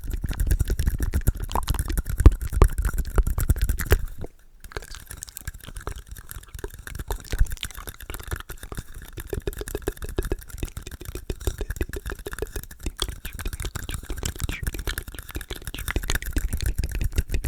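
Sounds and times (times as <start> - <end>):
wet mouth clicks and smacks: 0.0 - 17.4
rapid whispering: 6.2 - 17.4.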